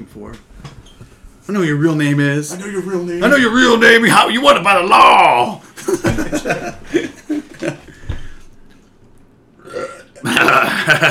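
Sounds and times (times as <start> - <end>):
speech: 0.0 - 0.7, 1.5 - 7.8
laughter: 5.6 - 8.0, 10.2 - 11.0
loud gurgling burp: 9.6 - 10.7.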